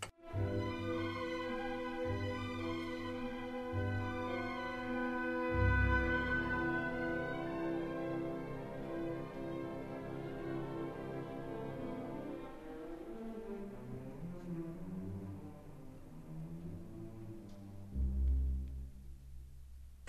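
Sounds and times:
symphony orchestra playing a slow second movement: 0.2 - 18.9.

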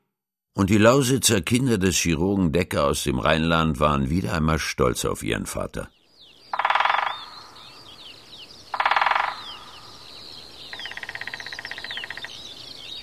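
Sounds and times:
speech: 0.6 - 6.0
birds chirping and trilling outdoors: 0.8 - 13.0
loud raspy croaking bursts: 6.5 - 8.0, 8.6 - 10.0, 10.7 - 12.5.

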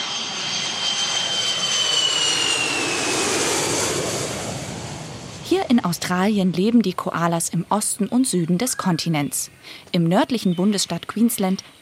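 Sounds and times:
airplane jet-engine roar in flight: 0.0 - 7.2
speech: 5.9 - 11.8.

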